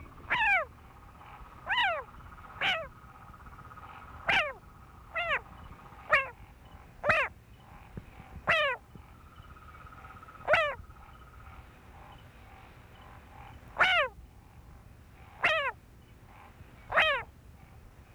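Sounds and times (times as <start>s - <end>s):
Boana faber distress call: 0.0s - 7.4s, 8.5s - 11.4s, 13.4s - 14.2s, 15.4s - 15.8s, 16.9s - 17.3s.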